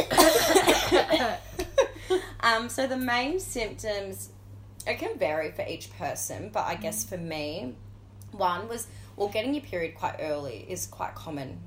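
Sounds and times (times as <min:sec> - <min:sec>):
people coughing: 0:00.0 - 0:01.9
speech: 0:02.5 - 0:11.6.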